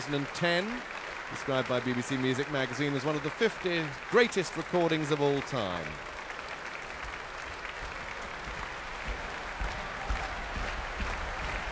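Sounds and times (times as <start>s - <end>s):
speech: 0.0s - 6.1s
large audience applause in an arena: 0.0s - 11.7s
heavy audience foot-stamping: 7.0s - 11.7s.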